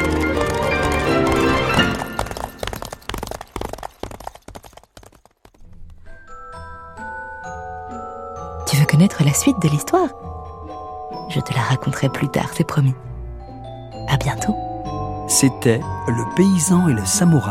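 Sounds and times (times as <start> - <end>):
light melodic tune: 0.0 - 2.8, 6.2 - 17.5
horse hooves galloping: 0.0 - 6.2
speech: 9.1 - 10.4, 11.3 - 13.1, 14.1 - 14.6, 15.3 - 17.5.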